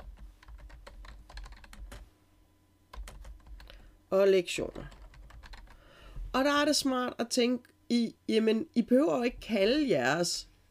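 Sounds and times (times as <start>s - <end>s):
rapid typing on a computer keyboard: 0.0s - 2.0s, 2.9s - 3.7s, 4.8s - 5.8s
speech: 4.1s - 5.0s, 6.3s - 10.5s.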